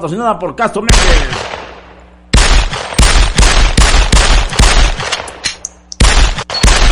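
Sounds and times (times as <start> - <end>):
speech: 0.0 - 1.6
loud rapid gunfire: 0.9 - 5.4, 6.0 - 6.9.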